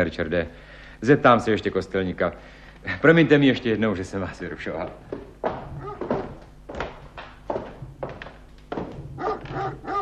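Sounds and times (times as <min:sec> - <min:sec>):
speech: 0:00.0 - 0:05.3
dog barking: 0:05.8 - 0:06.2, 0:09.1 - 0:09.9.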